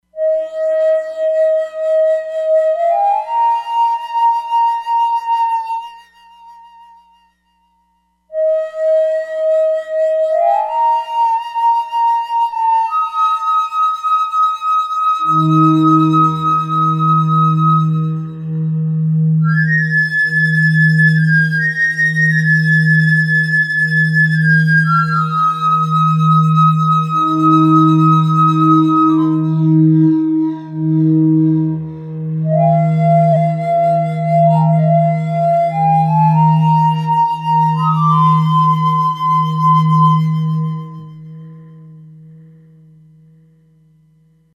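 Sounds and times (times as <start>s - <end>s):
suling flute factory patch on E-mu Proteus-3 synthesizer: 0.1s - 42.4s.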